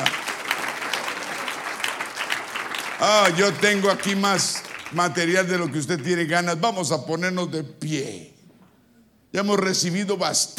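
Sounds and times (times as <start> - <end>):
congregation applauding: 0.0 - 6.4
speech: 3.0 - 8.3, 9.3 - 10.5.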